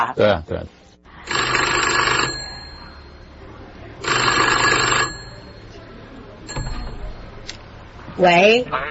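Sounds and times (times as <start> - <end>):
speech: 0.0 - 0.8, 8.2 - 8.8
1910 American antique mechanical telephone bell ringing: 1.3 - 3.3, 4.0 - 5.8, 6.5 - 7.3
clunk: 6.5 - 7.3.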